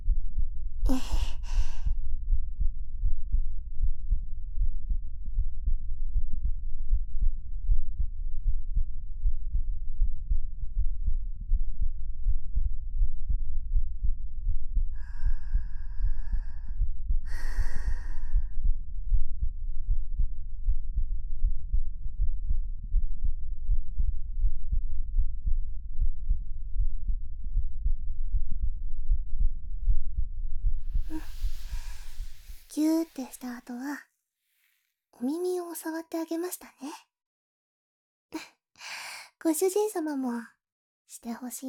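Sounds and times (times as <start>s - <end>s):
heartbeat: 0.0s - 33.6s
soft breathy sigh: 0.9s - 2.0s, 15.0s - 18.6s, 31.0s - 33.8s
quiet exhales: 31.0s - 33.5s
speech: 32.8s - 34.1s, 35.2s - 37.1s, 39.4s - 41.6s.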